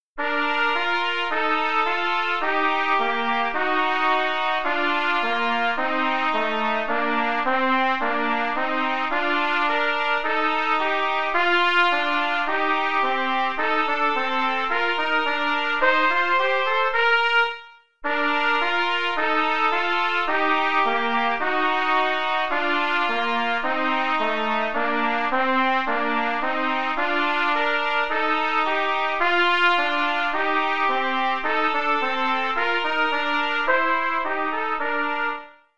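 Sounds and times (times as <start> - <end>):
trumpet duet: 0.2 - 35.7.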